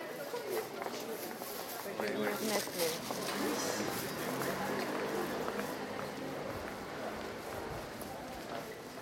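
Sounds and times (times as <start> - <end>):
footsteps of several people walking along a busy street: 0.0 - 9.0
traffic rumbling on a busy street: 2.4 - 9.0.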